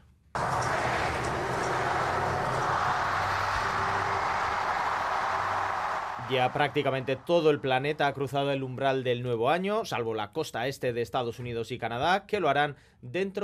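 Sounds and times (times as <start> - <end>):
roar of a huge outdoor crowd in a busy city street at New Year: 0.4 - 8.1
speech: 6.3 - 13.4.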